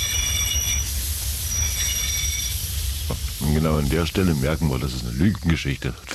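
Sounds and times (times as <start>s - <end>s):
train wheels squealing with high metallic tones: 0.0s - 3.2s
train rumbling while pulling into a station: 0.0s - 6.1s
speech: 3.1s - 6.1s.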